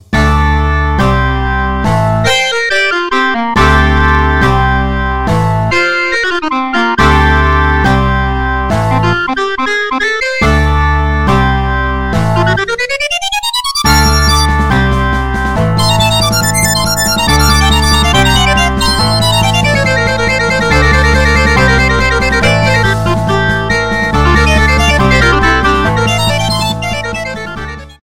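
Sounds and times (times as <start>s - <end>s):
electric organ: 0.5s - 28.0s.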